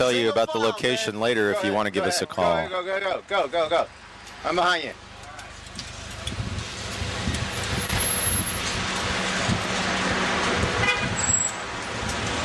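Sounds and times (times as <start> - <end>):
speech: 0.0 - 5.0
busy street traffic noise: 0.0 - 12.4
engine rumble from a passing FedEx delivery truck: 3.5 - 12.4.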